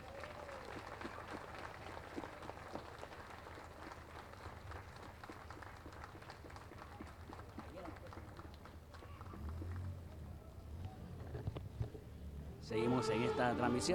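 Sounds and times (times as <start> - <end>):
large crowd applauding during outdoor religious procession: 0.0 - 10.1
outdoor bustle at religious procession: 0.0 - 13.9
murmuring voices at outdoor religious procession: 12.6 - 13.9
speech: 12.7 - 13.9.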